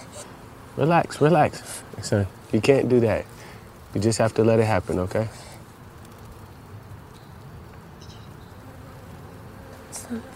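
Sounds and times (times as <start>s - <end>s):
bee buzzing while held: 0.0s - 10.3s
speech: 0.8s - 3.3s, 3.9s - 5.4s.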